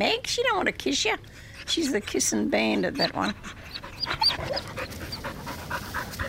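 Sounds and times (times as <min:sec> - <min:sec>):
speech: 0:00.0 - 0:04.7
faint hum: 0:00.0 - 0:06.2
dog panting in Newtown, Sydney: 0:01.4 - 0:06.2.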